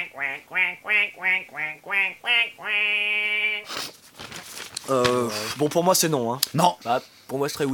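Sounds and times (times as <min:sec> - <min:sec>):
duck quacking: 0:00.0 - 0:03.7
speech: 0:00.2 - 0:04.0, 0:04.9 - 0:07.7
brief noisy rustle: 0:03.7 - 0:06.2.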